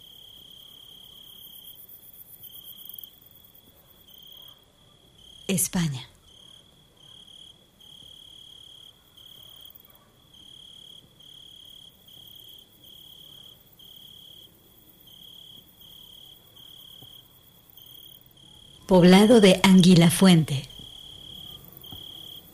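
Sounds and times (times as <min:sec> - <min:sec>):
cicadas droning: 0:00.0 - 0:05.5, 0:06.2 - 0:20.0, 0:20.6 - 0:22.5
faint hiss: 0:00.0 - 0:22.5
speech: 0:05.5 - 0:06.1, 0:18.9 - 0:20.7.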